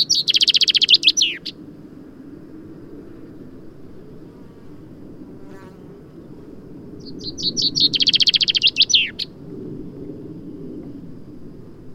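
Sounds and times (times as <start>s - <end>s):
common chaffinch Fringilla coelebs singing: 0.0s - 1.6s, 7.0s - 9.3s.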